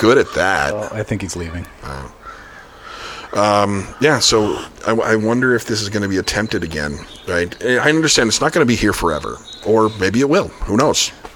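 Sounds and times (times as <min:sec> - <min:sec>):
speech: 0:00.0 - 0:02.2, 0:03.3 - 0:11.3
crow cawing outdoors: 0:00.0 - 0:05.2
steady outdoor noise: 0:00.0 - 0:11.3.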